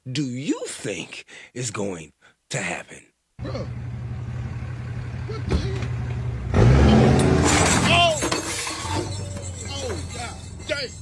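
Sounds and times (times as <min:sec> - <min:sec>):
speech: 0:00.1 - 0:03.9, 0:10.7 - 0:11.0
truck engine roaring and straining while pulling with chains: 0:03.4 - 0:11.0
car engine ripped out with chains, metal clanking and tearing: 0:07.1 - 0:10.2.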